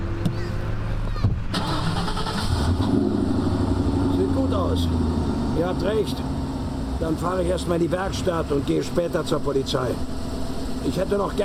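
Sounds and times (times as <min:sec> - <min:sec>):
car engine starting after a crash: 0:00.7 - 0:11.4
speech: 0:04.8 - 0:06.3, 0:07.0 - 0:10.2, 0:10.8 - 0:11.4.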